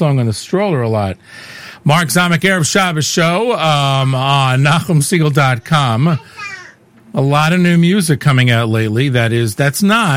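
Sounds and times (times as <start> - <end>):
speech: 0.0 - 6.5, 7.1 - 10.1
baby babbling high-pitched coo: 5.6 - 6.8.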